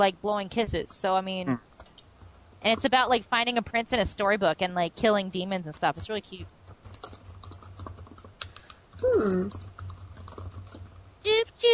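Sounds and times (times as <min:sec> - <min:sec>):
speech: 0:00.0 - 0:01.8, 0:02.6 - 0:06.6, 0:09.0 - 0:09.6
fast typing on a computer keyboard: 0:00.4 - 0:11.2.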